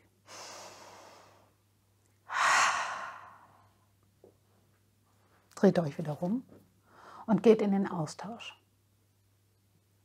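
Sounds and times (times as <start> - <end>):
deep breath in and out during a guided memory exercise: 0.3 - 1.6, 2.3 - 3.8
speech: 5.6 - 6.6, 7.3 - 8.6.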